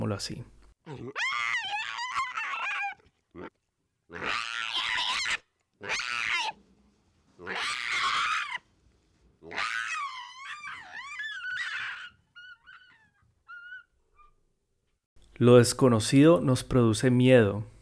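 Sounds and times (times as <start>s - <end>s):
speech: 0.1s - 1.7s, 15.4s - 17.7s
eerie alien creature warbling shrieks: 0.9s - 3.5s, 4.1s - 6.6s, 7.4s - 8.7s, 9.4s - 13.9s.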